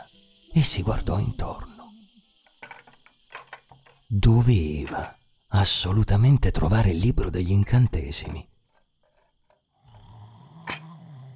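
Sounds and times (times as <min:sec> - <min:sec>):
speech: 0:00.6 - 0:01.7, 0:04.1 - 0:08.5
loud snoring: 0:09.8 - 0:11.3.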